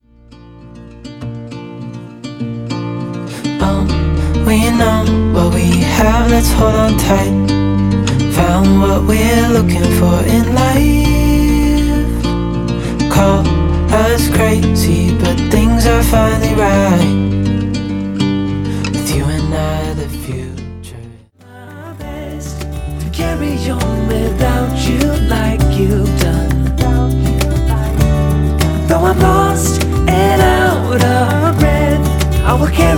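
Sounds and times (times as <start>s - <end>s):
E note on acoustic guitar: 0.0s - 32.9s.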